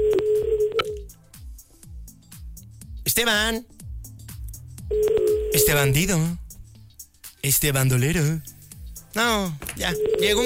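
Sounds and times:
telephone handset redial dialing tone: 0.0s - 1.0s, 4.9s - 5.8s, 9.9s - 10.4s
speech: 3.1s - 3.7s, 4.9s - 6.4s, 7.4s - 8.6s, 9.2s - 10.4s.

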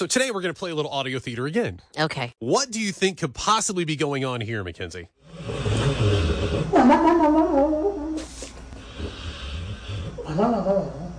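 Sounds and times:
speech: 0.0s - 7.4s, 10.4s - 11.0s
dog snoring: 5.2s - 6.8s, 8.8s - 11.1s.

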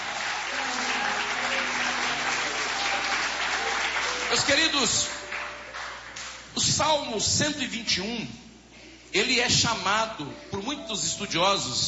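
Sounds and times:
congregation applauding: 0.0s - 6.5s
speech: 4.3s - 5.2s, 6.7s - 8.4s, 9.1s - 11.8s.

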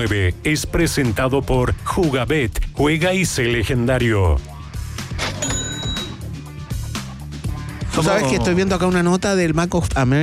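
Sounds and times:
speech: 0.0s - 4.5s, 8.0s - 10.2s
cash register bell ding: 5.2s - 6.2s.

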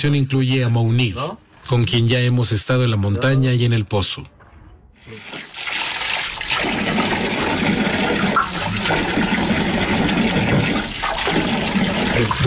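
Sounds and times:
speech: 0.0s - 4.4s, 12.2s - 12.4s
washing machine filling with water: 5.0s - 12.4s.

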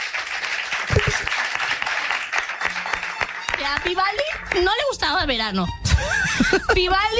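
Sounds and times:
audience applause: 0.0s - 4.8s
speech: 3.7s - 7.1s.

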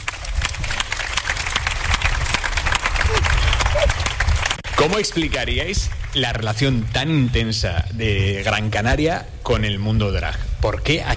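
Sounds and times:
audience applause: 0.0s - 6.3s
faint low murmur of crowd noise: 2.9s - 4.2s
speech: 4.8s - 11.1s.

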